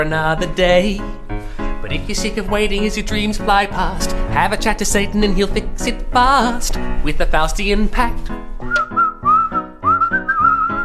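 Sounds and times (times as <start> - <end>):
speech: 0.0 - 1.3, 1.9 - 8.8
soft backing music: 0.0 - 10.8
person whistling a melodic tune: 8.7 - 10.8.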